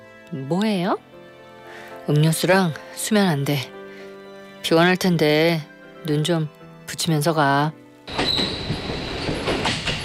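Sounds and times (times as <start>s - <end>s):
speech: 0.3s - 1.2s, 2.1s - 3.8s, 4.6s - 8.2s
thin high squeal of train brakes or wheels: 8.1s - 9.7s
night train wheels clacking over rail joints: 8.1s - 10.0s.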